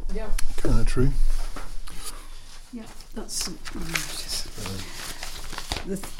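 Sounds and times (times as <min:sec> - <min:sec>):
speech: 0:00.1 - 0:01.3, 0:02.7 - 0:05.1, 0:05.9 - 0:06.1
papers rustling and crinkling: 0:01.2 - 0:06.1.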